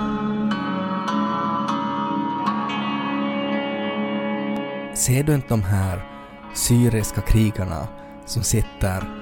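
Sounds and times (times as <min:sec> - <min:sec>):
slow hymn-like melody on a plucked string instrument: 0:00.0 - 0:09.2
speech: 0:05.0 - 0:09.2.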